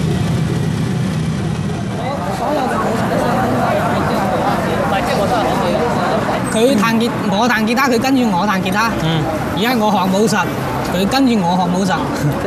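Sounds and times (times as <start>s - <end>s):
car and bus engines rumbling in morning rush-hour street traffic: 0.0s - 12.4s
indistinct crowd chatter: 0.0s - 12.4s
speech: 6.6s - 12.4s.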